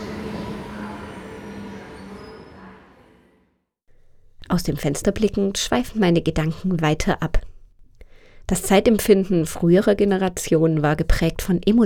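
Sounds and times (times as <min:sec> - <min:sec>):
train rumbling along rails heard from inside the carriage: 0:00.0 - 0:03.4
high whine: 0:00.0 - 0:03.5
speech: 0:04.5 - 0:07.5, 0:08.5 - 0:11.8.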